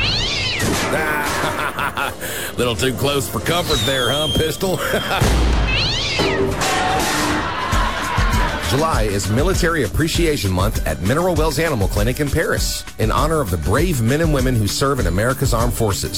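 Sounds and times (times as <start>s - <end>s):
cat meowing: 0.0s - 1.8s, 5.6s - 7.0s
laughter: 0.8s - 5.4s, 6.8s - 8.9s
speech: 2.2s - 7.2s, 8.7s - 16.1s.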